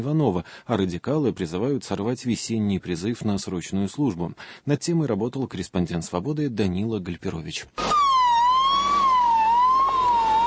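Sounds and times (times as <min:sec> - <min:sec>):
speech: 0:00.0 - 0:08.1
ambulance siren wailing: 0:07.8 - 0:10.4.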